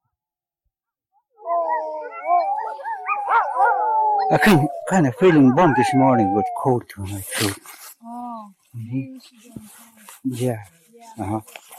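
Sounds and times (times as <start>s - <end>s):
several sled dogs howling together: 1.4s - 7.0s
speech: 4.3s - 7.8s, 8.7s - 11.7s.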